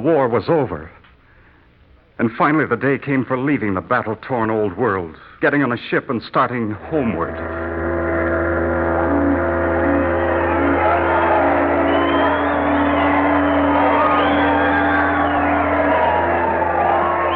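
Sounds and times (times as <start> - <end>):
speech: 0.0 - 1.0, 2.2 - 7.7
large crowd shouting and cheering in celebration: 7.1 - 17.3.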